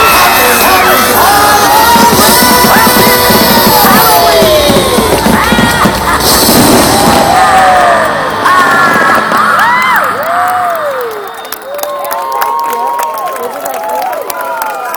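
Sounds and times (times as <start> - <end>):
scattered high-pitched voices in a crowd: 0.0 - 11.2
large crowd screaming and cheering: 0.0 - 14.9.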